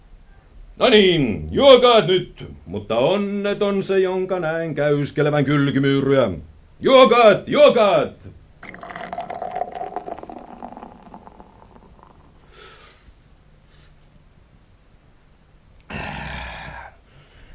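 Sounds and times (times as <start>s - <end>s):
speech: 0.8s - 8.4s
fizzy sparkling drink being poured: 8.6s - 12.6s.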